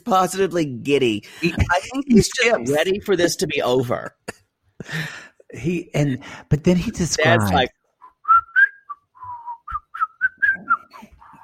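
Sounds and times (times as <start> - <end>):
speech: 0.0 - 7.8
person attempting to whistle: 8.0 - 11.4.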